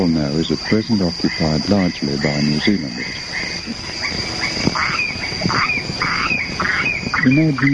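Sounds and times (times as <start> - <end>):
speech: 0.0 - 4.2, 7.2 - 7.7
frogs croaking with squawk-like calls at night: 0.0 - 7.7
high-pitched drone of crickets and cicadas at night: 0.0 - 7.7.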